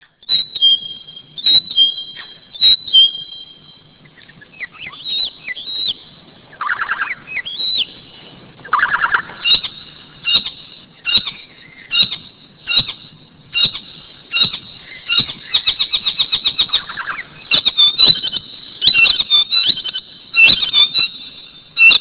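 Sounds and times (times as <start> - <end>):
tieke calling: 0.0 - 21.9.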